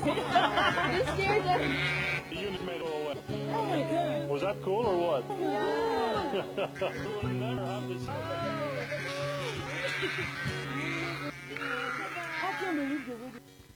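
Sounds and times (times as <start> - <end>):
speech: 0.0 - 2.1, 3.7 - 9.2, 10.0 - 10.8, 12.6 - 13.5
laughter: 0.0 - 3.0, 3.6 - 13.3
flock of sheep bleating: 0.0 - 4.3, 5.4 - 13.7
indistinct voices: 0.0 - 13.4.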